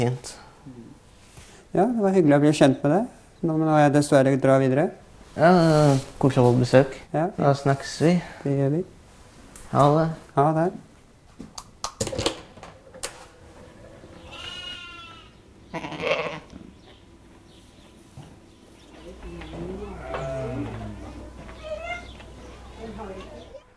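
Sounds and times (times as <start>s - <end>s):
speech: 0.0s - 0.8s, 1.7s - 9.0s, 9.7s - 10.9s
sheep bleating in an indoor sheep barn: 14.2s - 16.6s, 19.1s - 22.2s
shuffling in an indoor sheep barn: 17.2s - 23.6s.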